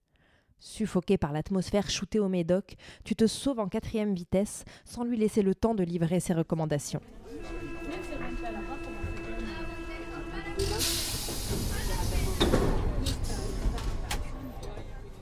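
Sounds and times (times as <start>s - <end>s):
speech: 0.6s - 7.7s
metro train steady low rumble: 7.0s - 15.1s
metro train humming motor whine: 7.1s - 11.8s
loud rush of hissing air on a metro train: 10.6s - 12.5s.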